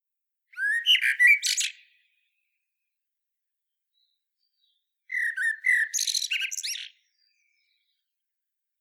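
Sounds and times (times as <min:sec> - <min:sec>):
common blackbird Turdus merula fluted warble with squeaky twittering: 0:00.5 - 0:02.8, 0:03.7 - 0:08.2.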